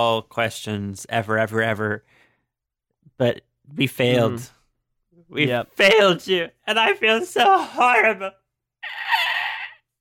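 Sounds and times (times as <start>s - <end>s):
speech: 0.0s - 2.2s, 3.2s - 4.6s, 5.3s - 9.0s
person imitating a raspy dying gasp: 8.8s - 9.9s.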